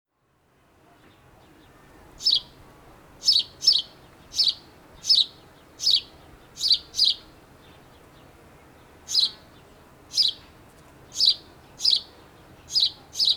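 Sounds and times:
house sparrow chirping: 1.6s - 2.6s, 3.2s - 10.5s, 11.1s - 13.3s.

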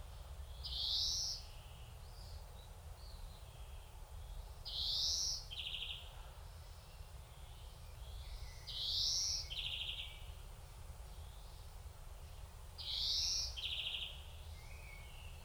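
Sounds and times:
faint soft bird calls: 0.1s - 10.4s, 11.1s - 15.4s.

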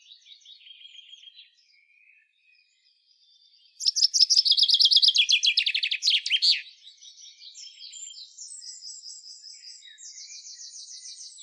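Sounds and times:
Fringilla coelebs common chaffinch song: 3.8s - 6.6s.

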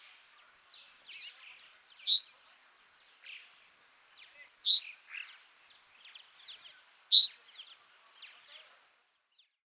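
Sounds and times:
common chaffinch Fringilla coelebs calls: 2.1s - 2.3s, 7.1s - 7.3s.

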